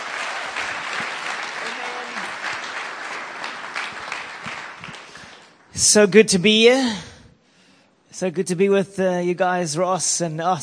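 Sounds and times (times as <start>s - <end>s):
large audience applause: 0.0s - 5.7s
speech: 5.8s - 7.1s, 8.2s - 10.6s.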